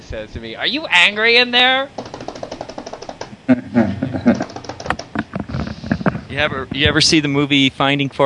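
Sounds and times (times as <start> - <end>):
speech: 0.1 - 2.0, 3.5 - 3.8, 6.4 - 8.2
rapid forceful typing on a computer keyboard: 1.9 - 3.4, 4.3 - 5.3.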